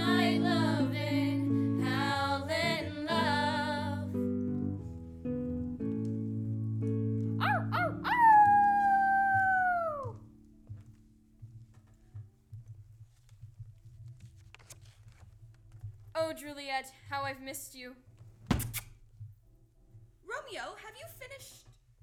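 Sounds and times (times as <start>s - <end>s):
soft low musical notes: 0.0s - 8.7s
wolf howling: 7.4s - 10.2s
speech: 16.8s - 18.1s.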